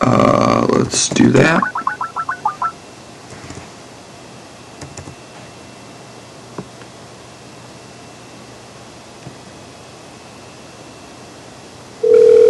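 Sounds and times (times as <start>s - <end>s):
speech: 0.9s - 1.8s
short phone dialing beeps: 1.6s - 2.7s, 12.0s - 12.4s
steady telephone ringing tone: 12.0s - 12.4s.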